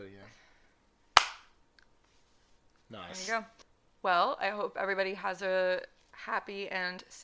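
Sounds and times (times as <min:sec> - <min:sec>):
high five hand slap: 0:01.2 - 0:01.5
speech: 0:02.9 - 0:07.2.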